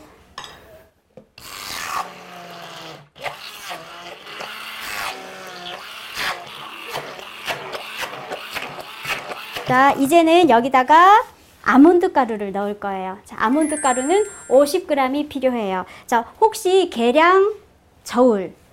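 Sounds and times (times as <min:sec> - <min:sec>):
hand blender grinding soft food with soy milk in a bowl: 0:01.4 - 0:09.7
speech: 0:09.7 - 0:18.6.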